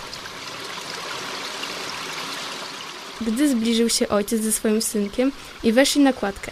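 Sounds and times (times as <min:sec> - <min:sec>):
flowing stream water by a footbridge: 0:00.0 - 0:06.5
speech: 0:03.2 - 0:06.5.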